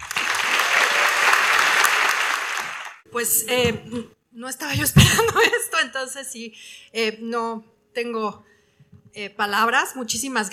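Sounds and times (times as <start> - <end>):
audience applause at a ceremony: 0.0 - 3.0
speech: 3.2 - 8.5, 9.1 - 10.5.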